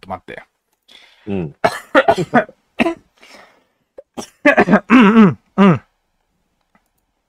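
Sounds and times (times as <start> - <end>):
speech: 0.1 - 0.5, 1.2 - 2.6
raspy breath: 0.9 - 1.4, 3.2 - 3.8
person coughing harshly: 1.3 - 3.0, 4.0 - 5.8.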